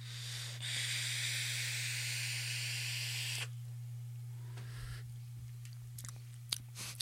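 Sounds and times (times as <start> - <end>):
electronic cigarette vape hissing at 80 watts with bottom airflow open: 0.0 - 3.5
constant low electrical hum: 0.0 - 6.9.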